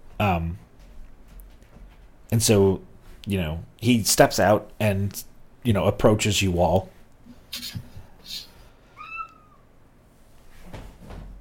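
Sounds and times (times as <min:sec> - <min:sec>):
soft rustles and thumps: 0:00.0 - 0:02.3, 0:10.2 - 0:11.4
speech: 0:00.2 - 0:00.6, 0:02.3 - 0:08.4
cat meowing: 0:09.0 - 0:09.7.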